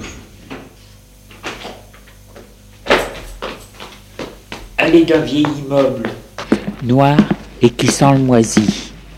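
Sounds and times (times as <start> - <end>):
door being kicked open: 2.8 - 3.5
speech: 4.9 - 6.2, 6.8 - 8.8.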